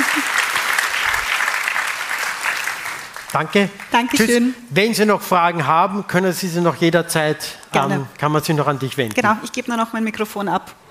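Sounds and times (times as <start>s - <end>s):
audience applause: 0.0s - 4.1s
speech: 3.3s - 10.8s.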